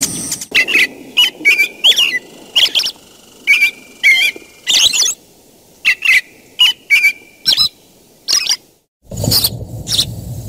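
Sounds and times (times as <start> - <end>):
American bird chirping: 0.5 - 5.2, 5.8 - 8.7.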